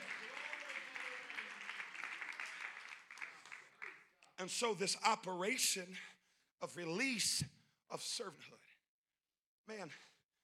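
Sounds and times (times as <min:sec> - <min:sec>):
audience clapping hands: 0:00.0 - 0:04.4
speech: 0:04.4 - 0:08.7, 0:09.7 - 0:10.1.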